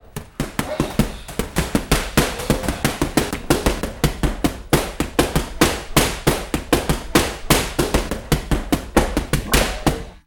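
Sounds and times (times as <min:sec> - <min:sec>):
Muay Thai fighter punching a punching bag: 0:00.1 - 0:10.2.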